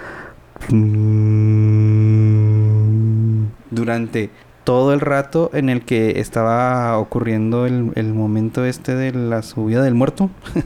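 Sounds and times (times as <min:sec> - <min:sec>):
person humming a low buzzing tone imitating a buzzing: 0:00.6 - 0:03.6
speech: 0:00.7 - 0:01.6, 0:03.7 - 0:10.6.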